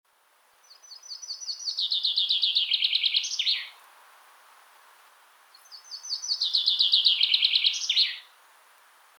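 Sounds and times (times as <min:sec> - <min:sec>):
common chaffinch singing: 0:00.6 - 0:03.8, 0:05.5 - 0:08.3.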